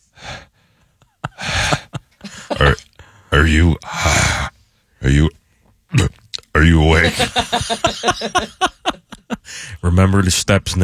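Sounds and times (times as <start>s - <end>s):
person breathing heavily with raspy gasps: 0.0s - 4.6s, 9.4s - 9.8s
laughter: 1.2s - 2.8s, 6.8s - 9.7s
speech: 3.4s - 4.2s, 7.1s - 8.7s, 9.9s - 10.8s.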